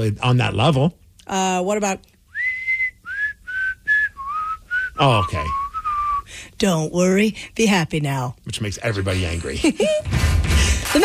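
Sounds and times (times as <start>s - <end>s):
speech: 0.0s - 2.1s, 5.0s - 5.6s, 6.3s - 11.0s
whistled melody from a pop song: 2.4s - 6.2s.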